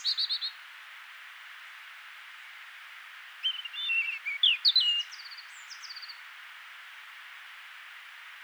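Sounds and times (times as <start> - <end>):
European robin Erithacus rubecula singing with trill and thin whistles: 3.4 - 6.2.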